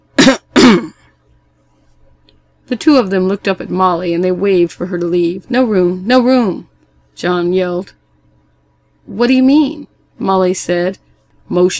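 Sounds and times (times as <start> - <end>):
throaty coughs: 0.2 - 1.2
speech: 0.3 - 0.9, 2.7 - 8.0, 9.1 - 11.7.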